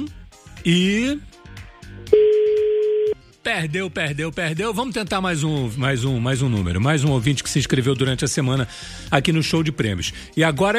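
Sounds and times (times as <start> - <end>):
speech: 0.0 - 1.3, 3.5 - 10.7
telephone ringing down the line: 2.1 - 3.2.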